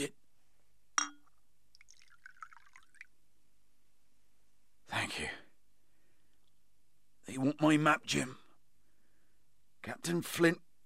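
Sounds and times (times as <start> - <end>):
speech: 0.0 - 0.2, 7.4 - 8.4, 9.8 - 10.7
bright glass clink: 1.0 - 1.4
rum trickling and gurgling into a glass: 1.7 - 3.2.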